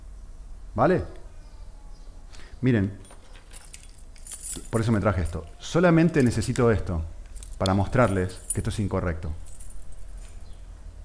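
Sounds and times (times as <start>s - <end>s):
speech: 0.8s - 1.2s, 2.6s - 3.0s, 4.6s - 9.4s
keys jangling: 3.0s - 10.6s.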